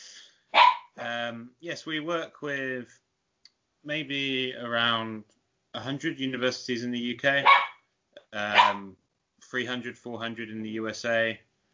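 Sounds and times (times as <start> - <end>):
dog barking excitedly: 0.5 - 1.0, 7.4 - 7.8, 8.5 - 8.8
speech: 1.3 - 3.0, 3.8 - 7.6, 8.3 - 11.5
high-pitched dog yelp: 8.5 - 8.8.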